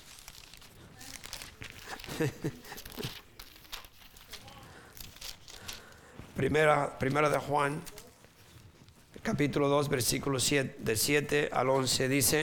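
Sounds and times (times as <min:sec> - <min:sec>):
pages of a Bible being turned: 0:00.0 - 0:09.3
person laughing: 0:01.8 - 0:03.3
speech: 0:02.2 - 0:03.2, 0:06.4 - 0:07.9, 0:09.3 - 0:12.4.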